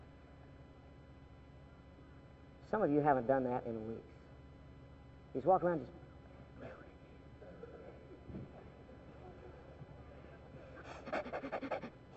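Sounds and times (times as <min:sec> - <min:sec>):
speech: 0:02.7 - 0:04.1, 0:05.3 - 0:06.0
person mimicking a dog's panting: 0:10.8 - 0:12.1.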